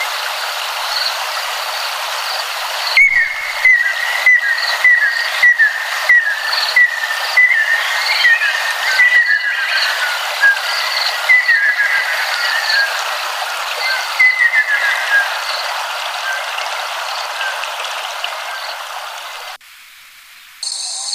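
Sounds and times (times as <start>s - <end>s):
Ryukyu ruddy kingfisher song: 2.8s - 18.9s.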